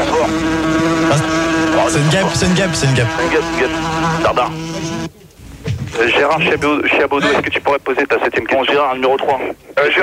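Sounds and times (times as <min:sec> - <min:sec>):
fly buzzing: 0:00.0 - 0:05.1
people murmuring: 0:00.0 - 0:08.4
speech: 0:01.9 - 0:05.2, 0:06.0 - 0:10.0.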